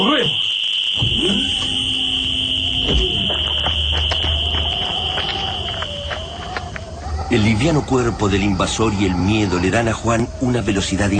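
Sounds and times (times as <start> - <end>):
piercing high-pitched electronic alarm tone: 0.0 - 7.4
speech: 1.0 - 1.8, 7.3 - 11.1.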